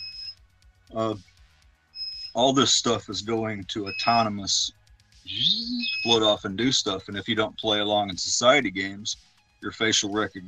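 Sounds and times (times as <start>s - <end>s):
high thin electronic alarm beep: 0.0s - 1.2s, 2.0s - 4.7s, 5.3s - 8.6s
low steady hum: 0.0s - 1.3s, 2.4s - 10.4s
speech: 0.9s - 1.3s, 2.4s - 10.4s.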